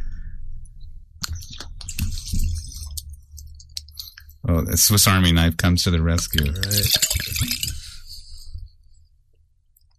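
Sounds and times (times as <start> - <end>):
speech: 4.5 - 7.8
rosé wine glugging and splashing into glasses: 6.2 - 8.2.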